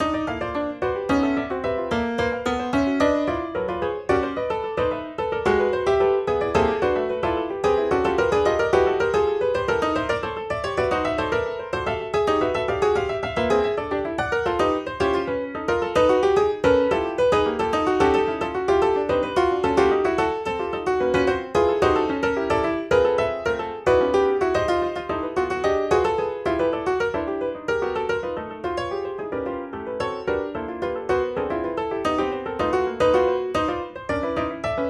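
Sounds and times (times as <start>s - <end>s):
grand piano playing: 0.0s - 34.8s.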